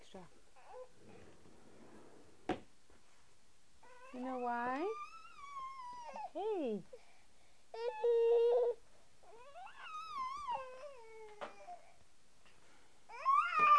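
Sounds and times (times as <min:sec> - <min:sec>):
speech: 0:00.1 - 0:00.4, 0:04.2 - 0:05.1, 0:06.3 - 0:07.0
child whining and whimpering: 0:03.8 - 0:06.4, 0:07.7 - 0:12.0, 0:13.1 - 0:13.7.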